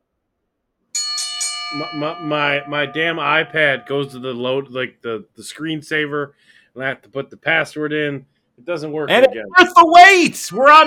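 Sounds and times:
metallic ring bell struck: 1.0s - 4.5s
speech: 1.7s - 10.8s.

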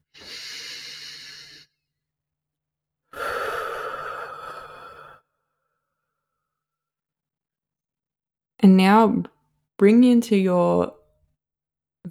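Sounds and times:
deep breaths: 0.1s - 1.8s, 3.1s - 5.6s
speech: 8.9s - 11.0s.

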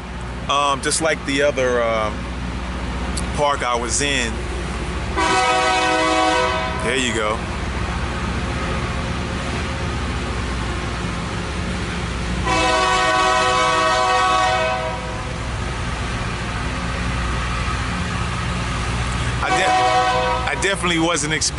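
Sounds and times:
slow-moving train rumbling past: 0.0s - 21.5s
speech: 0.5s - 2.3s, 3.4s - 4.5s, 5.2s - 5.6s, 6.8s - 7.5s, 20.8s - 21.5s
train horn blast: 5.1s - 7.1s, 12.4s - 15.4s, 19.4s - 21.0s.

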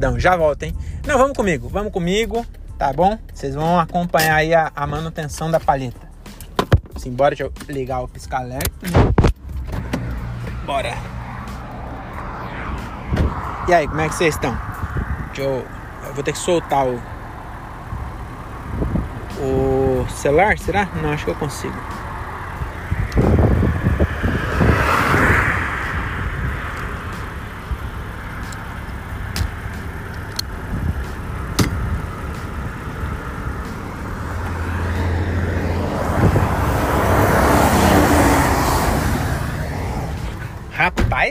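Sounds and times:
speech: 0.0s - 6.0s, 7.0s - 9.3s, 10.7s - 11.1s, 13.7s - 14.7s, 15.4s - 17.1s, 19.4s - 22.0s
steady roadside traffic noise: 0.0s - 41.2s
heavy truck roaring past a stationary car: 9.4s - 40.8s.

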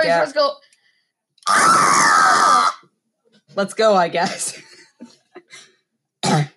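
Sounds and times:
speech: 0.0s - 0.7s, 1.4s - 2.2s, 3.6s - 4.7s
person screaming: 1.4s - 2.8s.

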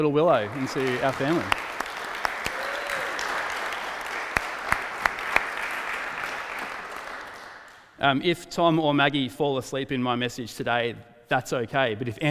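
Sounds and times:
speech: 0.0s - 1.7s, 8.0s - 12.2s
audience clapping: 0.0s - 8.0s.

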